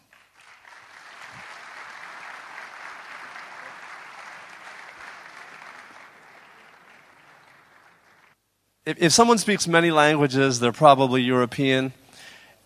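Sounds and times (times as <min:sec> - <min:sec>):
audience applause from a sizable crowd: 0:00.0 - 0:08.4
speech: 0:08.9 - 0:12.0.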